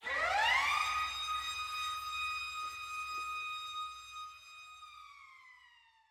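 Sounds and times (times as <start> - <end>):
siren: 0.0 - 6.0.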